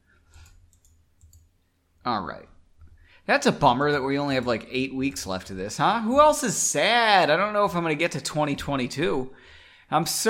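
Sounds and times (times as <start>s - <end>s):
quiet typing on a clicky keyboard: 0.4s - 1.5s
speech: 2.0s - 2.6s, 3.2s - 10.2s.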